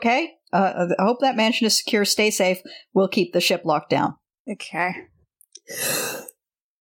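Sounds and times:
speech: 0.0s - 5.1s, 5.7s - 6.3s
short breathy yawn: 5.6s - 6.4s.

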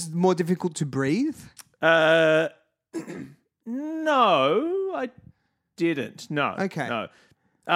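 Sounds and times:
speech: 0.0s - 7.7s
loud droning burp: 1.8s - 4.0s.

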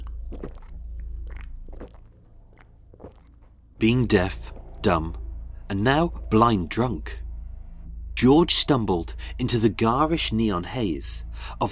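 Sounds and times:
man gulping vodka in an off-licence: 0.0s - 3.6s
low rumbling background: 0.0s - 11.7s
speech: 0.3s - 0.6s, 3.8s - 7.2s, 8.2s - 11.7s.

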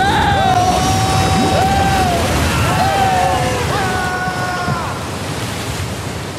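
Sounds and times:
wavering wail: 0.0s - 5.0s
stormy sea waves crashing: 0.0s - 6.3s.

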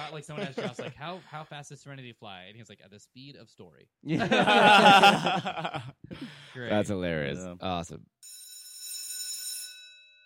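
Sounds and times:
laughter: 0.0s - 1.5s, 4.1s - 6.6s
speech: 0.1s - 8.4s
electric school bell ringing: 8.2s - 10.2s.

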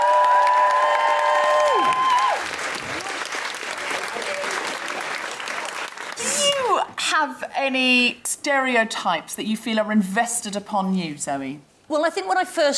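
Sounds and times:
audience clapping and cheering as a comedian guest is welcomed: 0.0s - 6.7s
speech: 7.2s - 12.7s.

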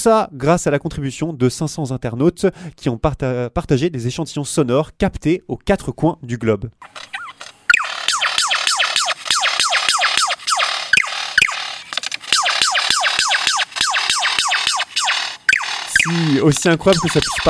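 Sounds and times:
speech: 0.0s - 7.2s, 16.1s - 17.4s
lyrebird mimicking a laser gun with descending electronic zaps: 6.8s - 17.4s.

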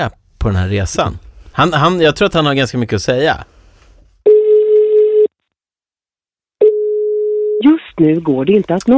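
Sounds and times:
speech: 0.0s - 3.5s, 7.6s - 8.9s
buzzy electronic phone ringback tone: 4.3s - 5.3s, 6.6s - 7.6s.

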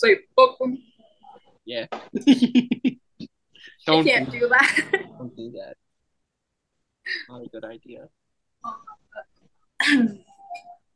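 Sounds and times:
speech: 0.0s - 0.9s, 1.7s - 3.0s, 3.9s - 5.8s, 7.1s - 10.7s
woman coughing: 9.8s - 10.3s.

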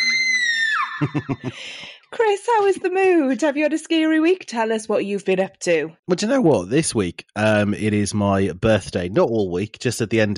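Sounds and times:
short loud high-pitched scream: 0.0s - 1.4s
laughter: 0.0s - 1.8s, 6.4s - 10.3s
speech: 1.0s - 10.3s.

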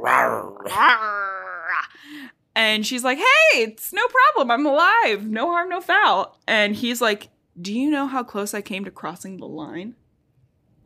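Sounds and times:
person vocally imitating an angry growl: 0.0s - 2.0s
speech: 0.7s - 1.2s, 2.0s - 10.0s.

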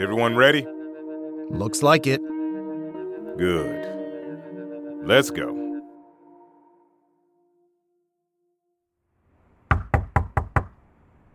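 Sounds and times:
speech: 0.0s - 0.8s, 1.5s - 2.3s, 3.4s - 4.0s, 5.0s - 5.6s
police knocking on a door: 9.7s - 10.8s.

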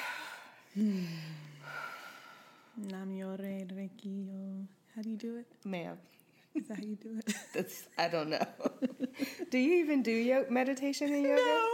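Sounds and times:
person taking a deep breath: 0.0s - 2.8s
speech: 0.8s - 2.0s, 2.8s - 11.7s.

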